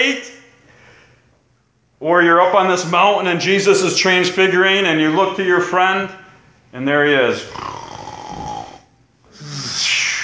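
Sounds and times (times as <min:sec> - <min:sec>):
speech: 0:00.0 - 0:00.4, 0:02.0 - 0:07.8
sleeping person snorting and snoring: 0:07.4 - 0:10.2.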